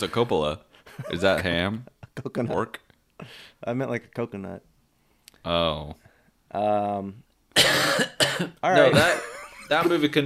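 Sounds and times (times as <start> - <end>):
speech: 0.0 - 4.7, 5.4 - 10.2
person coughing: 7.6 - 9.2.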